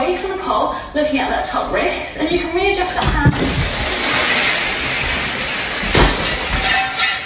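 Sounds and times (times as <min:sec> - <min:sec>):
speech: 0:00.5 - 0:03.8
water gushing from a broken fire sprinkler: 0:03.4 - 0:07.2.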